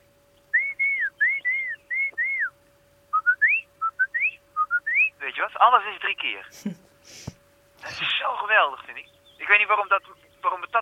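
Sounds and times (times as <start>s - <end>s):
person whistling an imitation of a song thrush: 0.4s - 5.2s, 9.0s - 10.7s
speech: 5.6s - 10.7s.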